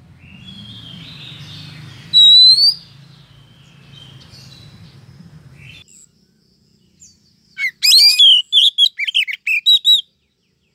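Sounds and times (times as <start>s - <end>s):
female oriental magpie-robin calling to the male: 0.2s - 2.9s, 7.6s - 10.1s.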